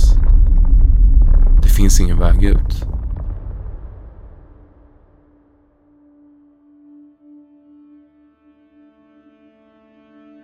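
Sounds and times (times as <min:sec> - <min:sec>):
rumbling crash of falling rock inside a mine: 0:00.0 - 0:05.4
speech: 0:01.8 - 0:02.9.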